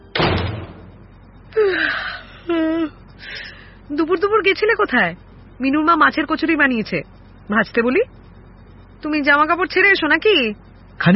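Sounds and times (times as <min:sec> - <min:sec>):
door opening: 0:00.1 - 0:01.0
low thud of a door opening: 0:00.1 - 0:01.2
speech: 0:03.9 - 0:08.2, 0:09.0 - 0:11.1.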